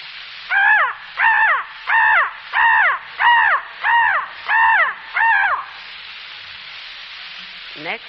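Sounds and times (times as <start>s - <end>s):
crow cawing: 0.5s - 5.8s
speech: 7.8s - 8.0s.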